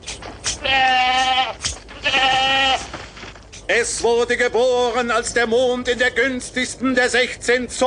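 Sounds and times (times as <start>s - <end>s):
young white goat bleating: 0.5s - 3.0s
speech: 3.8s - 7.8s.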